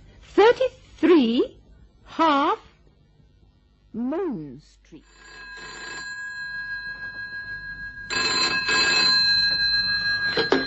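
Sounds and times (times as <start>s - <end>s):
speech: 0.6s - 1.6s, 4.0s - 5.7s
telephone bell ringing in a phone box: 5.0s - 10.6s.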